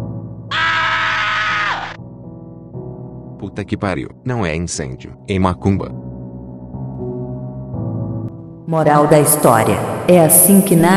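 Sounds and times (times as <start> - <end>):
man screaming in fright: 0.5 - 2.0
speech: 3.6 - 6.1, 8.7 - 10.9.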